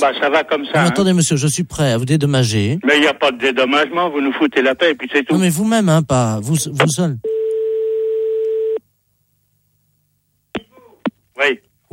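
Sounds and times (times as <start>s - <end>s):
speech: 0.0s - 7.4s, 11.4s - 11.9s
telephone line tone as a call is cut off: 7.2s - 8.8s.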